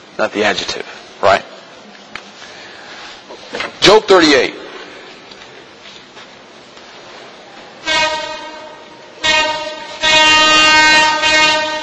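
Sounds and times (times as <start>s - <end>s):
speech: 0.2s - 1.5s, 3.9s - 4.6s
nearby train horn blasts: 7.8s - 11.8s.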